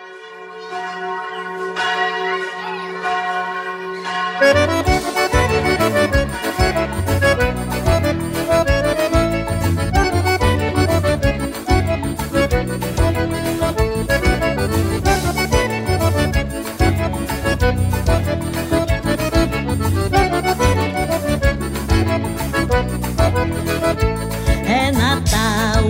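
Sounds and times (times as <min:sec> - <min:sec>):
sustained bell tones: 0:00.0 - 0:08.4
bright chiming bells in a Christmas song: 0:00.0 - 0:24.9
lively forró band playing a Christmas song: 0:04.0 - 0:25.8
steady driving percussion of a forró band: 0:04.4 - 0:25.8.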